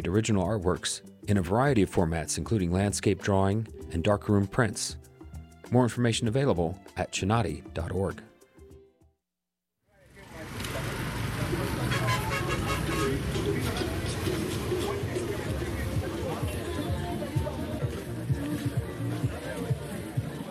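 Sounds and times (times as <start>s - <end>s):
speech: 0.0s - 5.1s, 5.7s - 8.3s
scattered tonal sounds of music: 0.0s - 9.2s, 12.0s - 20.4s
dense steady roar of traffic on a busy street in Lagos, Nigeria: 9.9s - 20.4s
babbling crowd of many voices on a busy street in Lagos, Nigeria: 10.1s - 20.4s.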